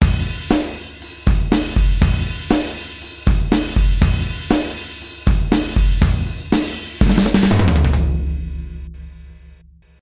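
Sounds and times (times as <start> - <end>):
drums: 0.0 - 10.0.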